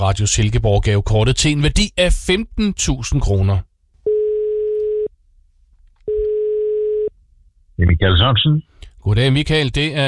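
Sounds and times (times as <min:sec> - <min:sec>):
speech: 0:00.0 - 0:03.7, 0:07.8 - 0:10.0
telephone ringback tone of an outgoing call: 0:04.1 - 0:05.1, 0:06.1 - 0:07.1.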